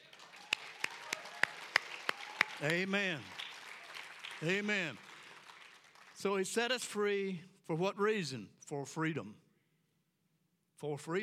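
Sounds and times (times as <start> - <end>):
church congregation clapping in praise: 0.0 - 7.2
speech: 2.6 - 3.4, 4.4 - 5.1, 6.2 - 9.4, 10.8 - 11.2.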